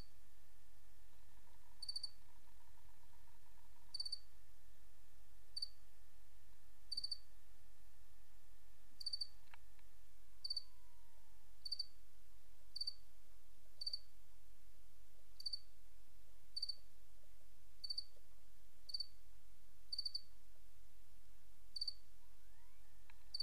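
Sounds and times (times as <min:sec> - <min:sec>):
faint low hum: 0:00.0 - 0:23.4
crickets chirping: 0:01.6 - 0:02.7, 0:03.5 - 0:04.3, 0:05.6 - 0:05.8, 0:06.9 - 0:07.2, 0:09.0 - 0:09.4, 0:10.4 - 0:11.0, 0:11.6 - 0:12.0, 0:12.7 - 0:13.0, 0:13.8 - 0:14.1, 0:15.4 - 0:15.7, 0:16.6 - 0:16.8, 0:17.8 - 0:18.1, 0:18.9 - 0:19.2, 0:19.9 - 0:20.3, 0:21.8 - 0:23.4.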